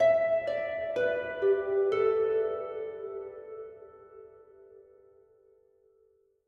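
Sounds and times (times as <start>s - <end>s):
high harp from a game: 0.0s - 4.9s.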